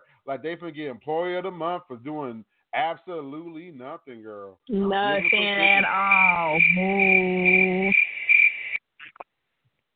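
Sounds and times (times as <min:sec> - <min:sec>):
speech: 0:00.2 - 0:08.0
crickets chirping: 0:05.0 - 0:08.8.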